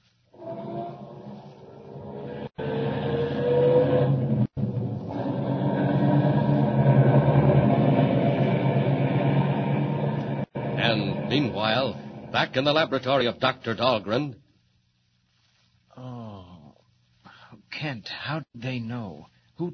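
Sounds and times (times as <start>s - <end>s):
car engine starting, revving and pulling away: 2.4s - 12.6s
speech: 11.3s - 14.4s, 17.8s - 19.7s.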